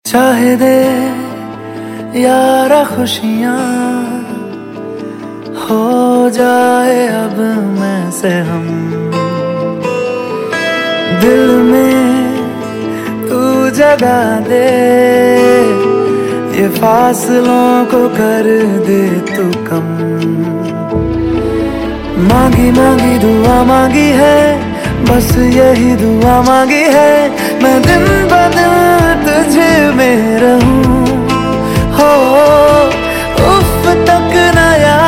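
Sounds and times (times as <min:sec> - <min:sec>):
romantic Hindi ringtone music: 0:00.0 - 0:35.0.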